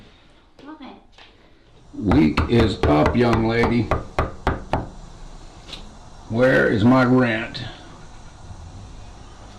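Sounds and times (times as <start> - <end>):
speech: 1.9 - 4.1, 6.3 - 7.7
hard knocking on a door: 2.0 - 4.9.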